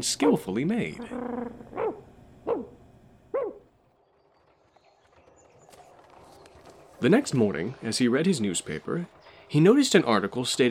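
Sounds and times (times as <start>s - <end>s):
speech: 0.0s - 1.6s, 7.0s - 10.6s
dog barking fiercely: 1.8s - 3.7s.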